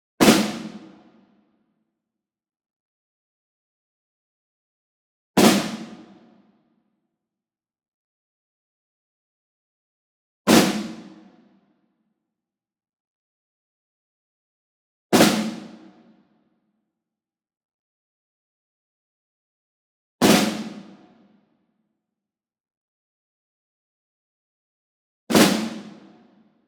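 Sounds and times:
ensemble snare drum group flams, medium: 0.2s - 1.0s, 5.4s - 6.2s, 10.5s - 11.3s, 15.2s - 16.0s, 20.2s - 21.1s, 25.3s - 26.2s.

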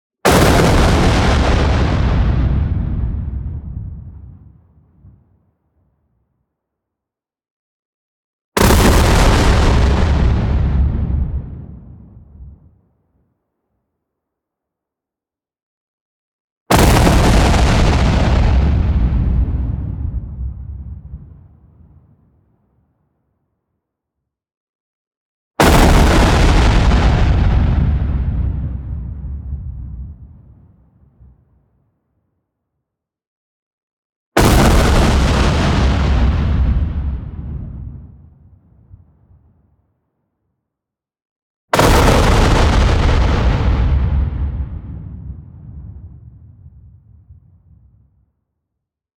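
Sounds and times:
long distorted explosion: 0.3s - 5.2s, 8.6s - 12.7s, 16.7s - 21.9s, 25.6s - 31.3s, 34.4s - 38.4s, 41.8s - 48.1s.

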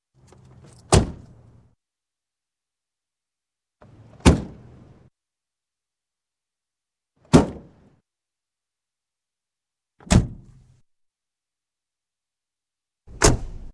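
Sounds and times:
car door: 0.2s - 1.4s.

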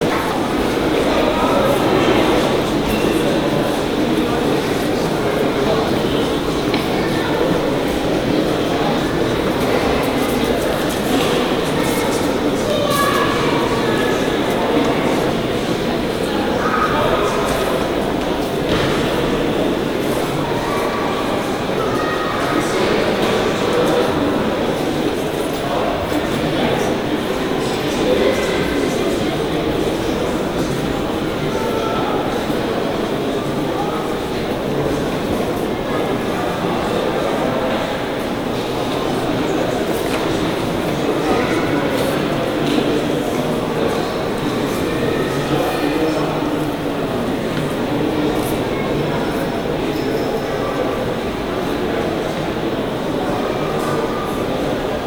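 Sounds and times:
crowd in a museum: 0.0s - 55.0s.

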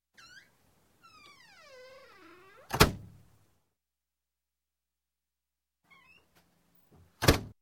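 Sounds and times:
wooden door squeaking shut: 0.1s - 3.2s, 5.9s - 6.4s, 7.2s - 7.5s.

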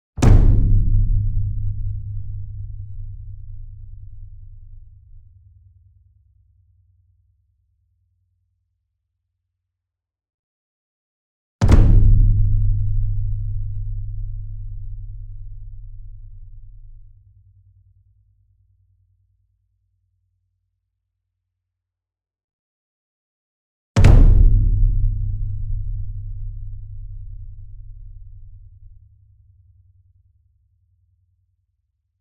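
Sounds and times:
large concert bass drum flam: 0.2s - 5.3s, 11.6s - 17.1s, 24.0s - 29.0s.

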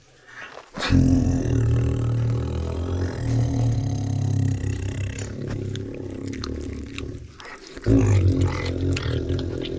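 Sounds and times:
tiger growling: 0.8s - 9.7s
speech: 0.9s - 1.5s
tiger licking: 2.1s - 9.7s.

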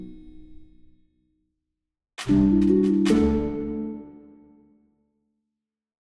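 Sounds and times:
neutral orchestral jingle: 2.2s - 3.8s.

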